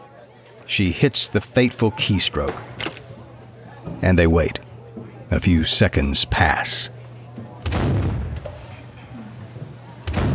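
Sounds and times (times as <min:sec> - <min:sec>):
speech: 0:00.7 - 0:03.0, 0:04.0 - 0:04.6, 0:05.3 - 0:06.9
cannon blasts: 0:07.6 - 0:08.4.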